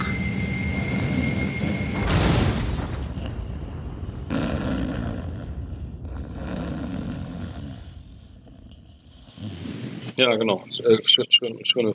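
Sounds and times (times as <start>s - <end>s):
airplane engine roar in flight from Hannover to Würzburg: 0.0s - 7.6s
speech: 10.2s - 11.9s.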